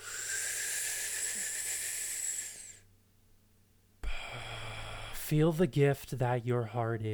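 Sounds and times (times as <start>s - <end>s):
long airy deep breath: 0.0s - 2.9s, 4.0s - 5.4s
speech: 5.3s - 7.1s.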